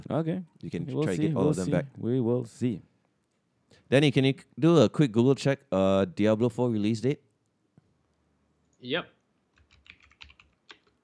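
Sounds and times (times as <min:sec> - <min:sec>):
speech: 0:00.1 - 0:02.9, 0:03.8 - 0:07.3, 0:08.8 - 0:09.2
rapid clicky keystrokes on a mechanical keyboard: 0:09.5 - 0:11.0.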